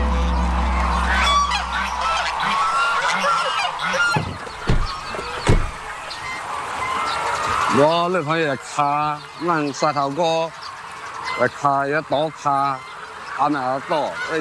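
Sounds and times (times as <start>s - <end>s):
low hum: 0.0s - 5.9s
lion-head goose honking: 0.0s - 14.3s
sharp knocks: 4.1s - 5.8s
speech: 7.8s - 10.6s, 11.4s - 14.3s.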